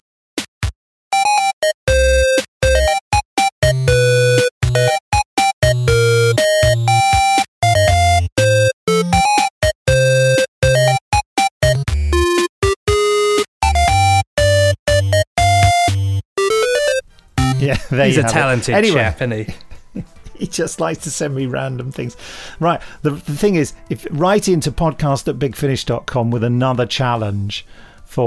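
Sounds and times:
8-bit Game Boy chiptune rendition of a theme tune: 1.1s - 17.8s
laughter: 17.6s - 20.6s
speech: 17.9s - 28.2s.

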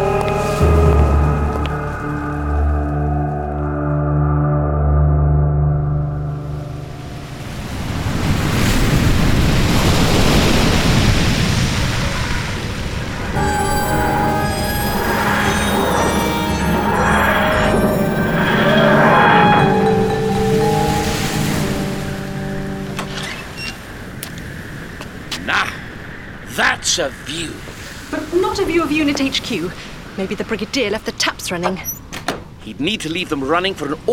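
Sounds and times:
sustained tonal notes: 0.0s - 8.0s, 13.4s - 24.2s
ocean surf waves rolling and crashing: 6.5s - 30.2s
speech: 29.5s - 32.1s, 32.7s - 34.1s.

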